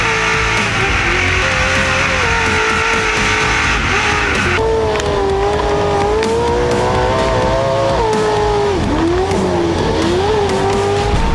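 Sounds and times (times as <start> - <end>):
loud car engine revving through a throaty Borla performance exhaust: 0.0 - 11.3.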